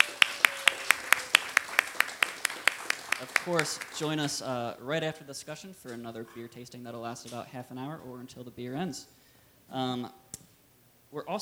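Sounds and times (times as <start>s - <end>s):
audience applause of sharp hand claps: 0.0s - 4.4s
speech: 3.2s - 10.2s, 11.1s - 11.4s.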